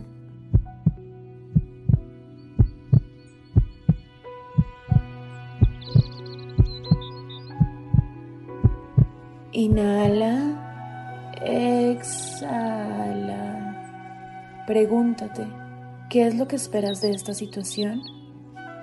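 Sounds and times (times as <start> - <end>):
soft sustained musical drone: 0.0 - 18.8
slow heartbeat thumping: 0.5 - 1.0, 1.6 - 10.3
speech: 9.6 - 10.4, 14.7 - 18.2.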